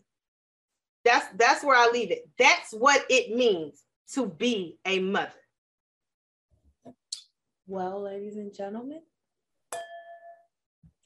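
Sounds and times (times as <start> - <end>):
speech: 1.0 - 5.4, 7.7 - 9.1
two wine glasses holding Chardonnay clinking in a toast: 9.7 - 10.5.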